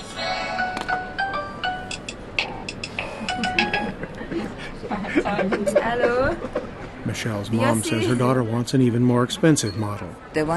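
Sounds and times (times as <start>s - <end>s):
faint noise: 0.0s - 10.5s
bright electronic cell phone ringtone of high tones: 0.2s - 2.0s, 3.0s - 4.0s
laughter: 3.3s - 8.5s
speech: 5.2s - 10.5s.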